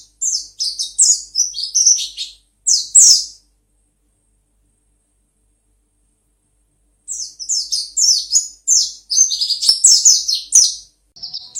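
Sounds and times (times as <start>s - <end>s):
white-eye song: 0.0s - 3.4s, 7.1s - 11.5s.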